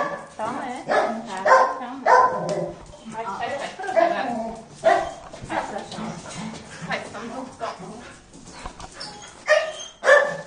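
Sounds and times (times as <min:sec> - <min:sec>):
people talking: 0:00.4 - 0:02.2, 0:03.0 - 0:04.6, 0:05.5 - 0:06.2, 0:06.8 - 0:08.1
small black dog barking and yipping excitedly while jumping to greet visitors: 0:00.9 - 0:02.5, 0:09.5 - 0:10.4.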